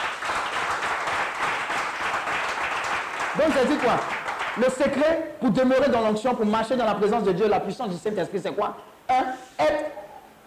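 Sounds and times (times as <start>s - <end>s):
congregation applauding during a church service: 0.0s - 5.0s
speech: 3.4s - 9.8s.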